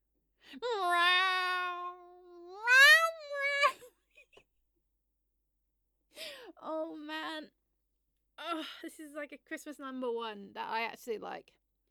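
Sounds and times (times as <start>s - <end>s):
speech: 0.5s - 0.8s, 8.6s - 11.6s
human voice singing a meow imitating a cat: 0.6s - 3.8s.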